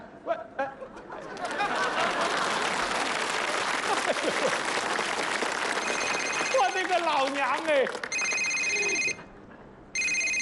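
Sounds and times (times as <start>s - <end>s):
laughter: 0.5s - 4.9s
telephone ringing with a bright electronic trill: 5.8s - 6.9s, 8.1s - 9.3s, 10.0s - 10.3s
speech: 7.0s - 8.0s.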